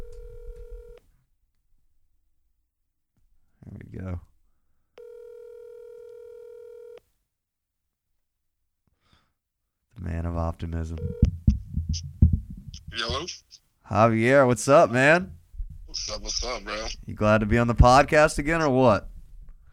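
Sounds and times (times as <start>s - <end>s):
phone call electronic ringback tones: 0.0s - 1.0s, 5.0s - 7.0s, 11.0s - 11.4s
speech: 10.5s - 11.3s, 13.0s - 15.4s, 16.0s - 19.1s.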